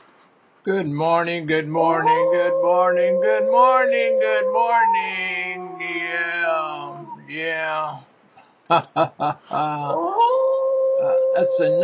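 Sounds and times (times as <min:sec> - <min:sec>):
speech: 0:00.6 - 0:08.1, 0:08.7 - 0:10.4, 0:11.0 - 0:11.8
dogs howling: 0:01.8 - 0:07.4, 0:09.8 - 0:11.8.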